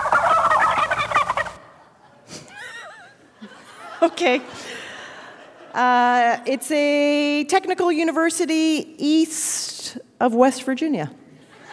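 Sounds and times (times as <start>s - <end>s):
turkey gobbling played as a stadium mascot sound: 0.0s - 1.8s
laughter: 1.6s - 5.8s, 11.4s - 11.7s
speech: 4.0s - 4.7s, 5.8s - 11.2s.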